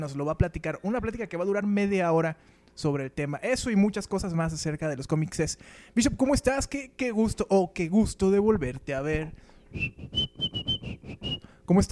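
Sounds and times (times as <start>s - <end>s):
speech: 0.0s - 11.9s
person attempting to whistle with breathy bursts: 9.7s - 11.6s.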